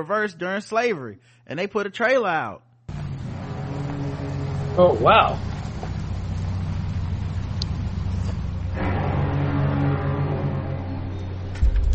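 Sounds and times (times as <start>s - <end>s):
speech: 0.0s - 2.7s, 4.8s - 5.5s
car engine rumbling as the car pulls up: 2.9s - 11.9s.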